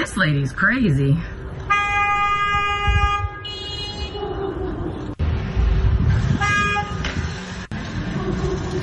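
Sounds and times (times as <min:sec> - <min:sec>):
traffic and engine rumble: 0:00.0 - 0:08.8
speech: 0:00.1 - 0:01.4
car horns honking: 0:01.7 - 0:04.3, 0:06.4 - 0:07.1.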